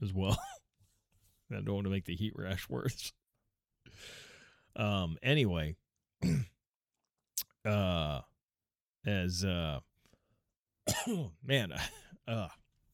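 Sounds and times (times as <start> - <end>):
speech: 0.0 - 0.5, 1.5 - 3.2, 4.8 - 6.5, 7.6 - 8.3, 9.0 - 9.9, 10.9 - 12.6
man clearing throat after choking on broccoli: 6.2 - 6.6, 10.9 - 12.6.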